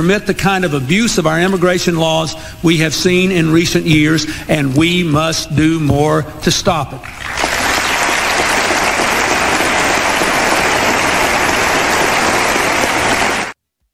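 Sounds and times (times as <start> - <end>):
speech: 0.0 - 7.5
large crowd applauding a speech on immigration: 7.1 - 13.9.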